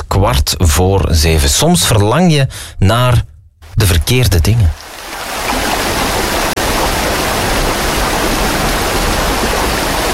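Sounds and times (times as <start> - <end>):
speech: 0.2 - 4.8
rushing water: 4.7 - 10.1.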